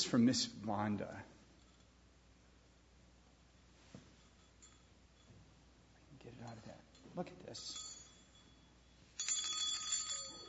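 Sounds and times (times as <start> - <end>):
speech: 0.1 - 1.4, 6.5 - 7.9
small decorative bell jingling: 4.2 - 5.4, 6.2 - 10.4.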